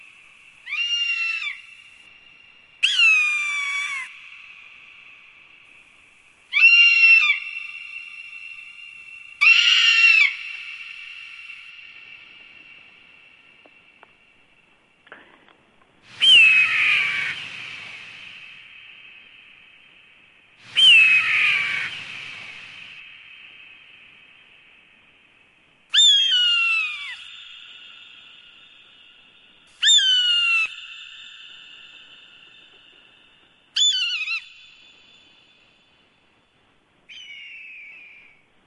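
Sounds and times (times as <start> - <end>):
hawk giving piercing high-pitched screeching calls: 0.7 - 1.6, 2.8 - 4.1, 6.5 - 7.5, 9.4 - 10.6, 16.2 - 18.1, 20.8 - 22.0, 25.9 - 27.3, 29.8 - 30.7, 33.8 - 34.5.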